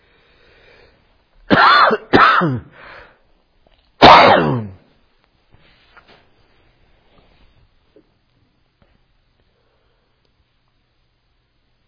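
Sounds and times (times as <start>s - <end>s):
person clearing throat: 1.5s - 2.7s, 4.0s - 4.9s.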